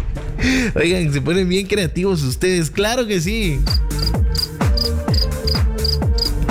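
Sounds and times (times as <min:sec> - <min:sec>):
speech: 0:00.4 - 0:04.0
heavy thumping low bass beat: 0:02.3 - 0:06.5
crickets chirping: 0:03.6 - 0:06.5.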